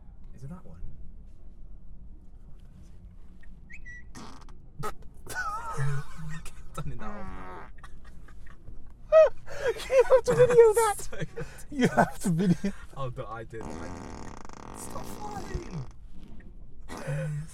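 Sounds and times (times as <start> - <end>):
speech: 0.4 - 1.0, 10.2 - 16.0
short low buzzy fart sound effects on a car turn signal: 4.1 - 5.0, 13.6 - 15.9
high squealing laughing voices: 5.3 - 13.0.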